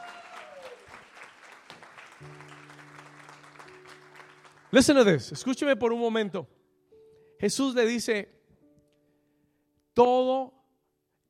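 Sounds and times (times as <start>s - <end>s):
audience applauding: 0.0s - 5.3s
speech: 4.7s - 6.6s, 7.4s - 8.4s, 10.0s - 10.6s.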